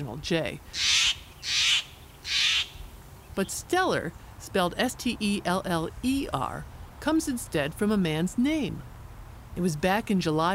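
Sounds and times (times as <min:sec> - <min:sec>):
speech: 0:00.0 - 0:01.0, 0:03.4 - 0:08.9, 0:09.6 - 0:10.5
Steller's jay giving loud harsh rasping calls: 0:00.7 - 0:02.9.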